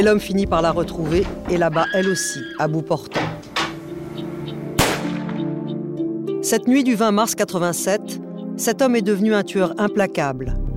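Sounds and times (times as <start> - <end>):
speech: 0.0 - 3.4, 6.4 - 10.6
steady droning musical bed: 0.0 - 10.7
gunshots: 4.8 - 5.5.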